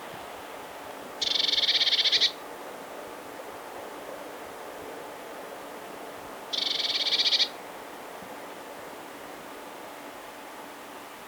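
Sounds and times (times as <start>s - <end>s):
Eurasian blue tit Cyanistes caeruleus dry churring call: 1.2s - 2.3s, 6.5s - 7.5s.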